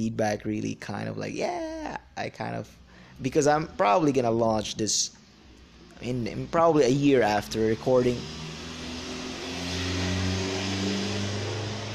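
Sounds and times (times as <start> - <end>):
speech: 0.0 - 5.2, 6.0 - 8.5
broad road noise: 1.6 - 11.9
noisy car engine droning and revving as it passes outside: 5.2 - 11.9.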